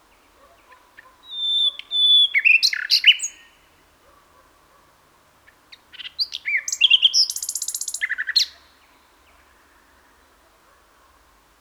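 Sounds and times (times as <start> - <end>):
common nightingale Luscinia megarhynchos singing: 1.0 - 3.5, 5.8 - 8.6.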